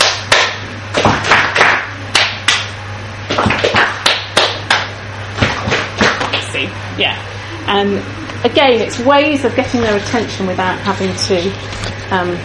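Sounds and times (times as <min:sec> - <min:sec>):
hand claps in a call-and-response attention pattern: 0:00.0 - 0:06.5
speech: 0:07.0 - 0:12.4.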